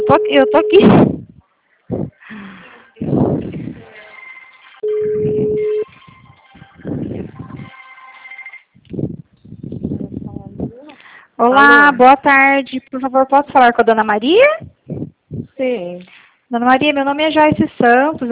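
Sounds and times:
speech: 0.1s - 1.3s, 11.4s - 14.7s, 15.6s - 18.2s
telephone ringing: 4.2s - 8.8s.

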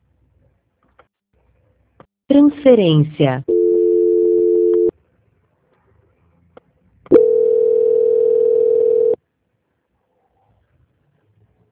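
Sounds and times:
speech: 2.3s - 3.5s
telephone dial tone while redialing a dropped call: 3.5s - 4.9s, 7.1s - 9.2s.

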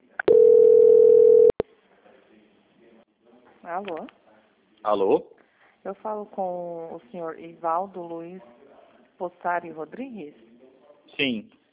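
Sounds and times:
telephone call transfer tone during a bank call: 0.2s - 1.6s
speech: 3.7s - 4.2s, 4.8s - 8.6s, 9.2s - 10.5s, 11.1s - 11.6s.

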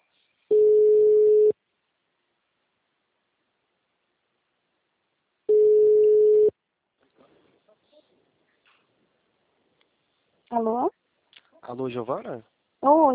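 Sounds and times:
telephone line tone on an unanswered call: 0.5s - 1.5s, 5.5s - 6.5s
speech: 10.6s - 10.9s, 11.7s - 13.1s.

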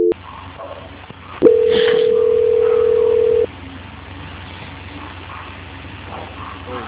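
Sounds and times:
faint line noise on a narrow hissy phone line: 1.4s - 3.5s
steady mid-pitched tone of a telephone call being transferred: 1.4s - 3.5s.

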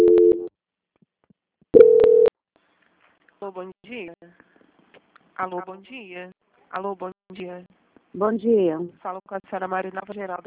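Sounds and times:
telephone line tones during a call transfer: 0.0s - 0.5s, 1.8s - 2.3s
speech: 3.5s - 4.4s, 5.4s - 10.4s.

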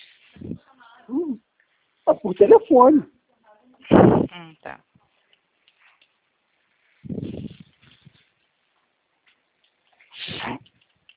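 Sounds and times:
speech: 2.1s - 3.2s, 4.0s - 4.9s
person sniffling from a runny nose during a bad flu: 10.2s - 10.6s.

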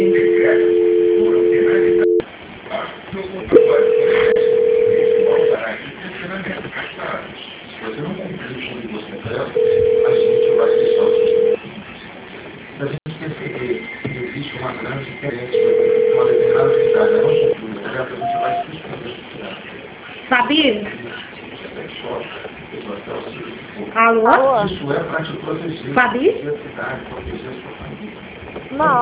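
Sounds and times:
telephone call transfer tones: 0.0s - 2.2s, 3.6s - 5.6s, 9.6s - 11.6s, 15.5s - 17.6s, 18.2s - 18.7s
noisy telephone line: 0.0s - 28.9s.

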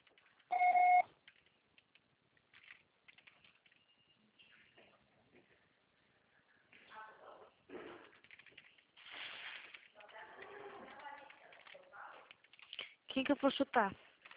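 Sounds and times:
answering machine beep: 0.5s - 1.0s
speech: 13.2s - 14.0s.

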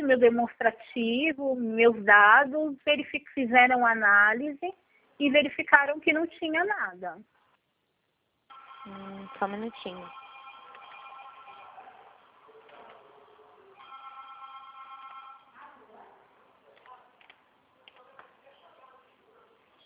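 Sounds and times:
speech: 0.1s - 7.4s, 8.8s - 10.2s
telephone ringing: 8.5s - 12.2s, 13.8s - 15.6s.

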